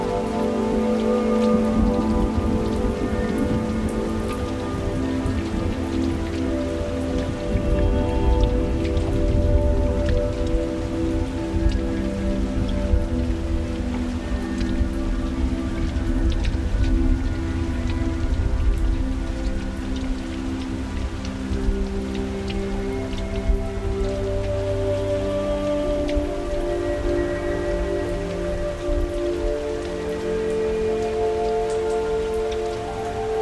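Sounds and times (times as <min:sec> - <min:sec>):
rain falling steadily outside the window: 0:00.0 - 0:33.4
soft slow music of long held notes: 0:00.0 - 0:33.4.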